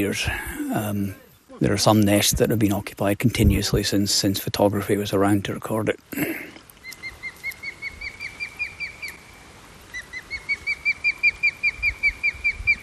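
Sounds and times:
speech: 0.0 - 6.3
osprey giving a serious alarm call near its nest: 6.8 - 12.8.

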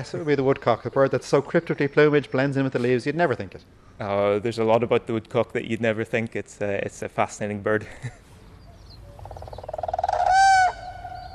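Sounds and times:
speech: 0.0 - 8.2
common crane trumpeting call: 9.2 - 11.3.

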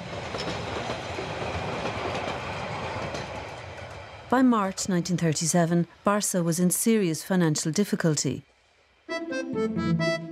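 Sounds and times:
train wheels clattering on rails: 0.0 - 4.3
speech: 4.3 - 8.5, 9.5 - 10.2.

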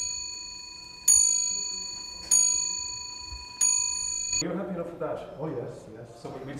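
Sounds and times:
clock with sharp metallic strikes: 0.0 - 4.4
steady faintly ringing tone: 0.0 - 4.4
speech: 4.4 - 6.5.

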